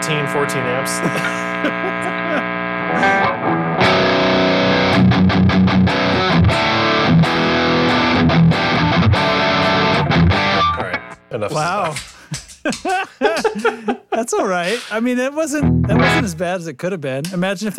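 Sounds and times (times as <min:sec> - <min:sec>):
steady electrical hum on the amp channel: 0:00.0 - 0:04.5
electric guitar through two boost and three overdrive pedals: 0:00.0 - 0:11.3, 0:15.6 - 0:16.4
speech: 0:00.1 - 0:03.6, 0:11.3 - 0:17.7
laughter: 0:00.9 - 0:03.3, 0:11.5 - 0:15.0.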